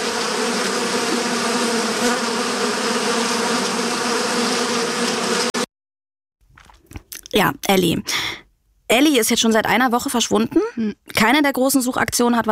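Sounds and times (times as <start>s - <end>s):
loud steady buzzing of bees: 0.0s - 5.7s
speech: 7.4s - 12.4s.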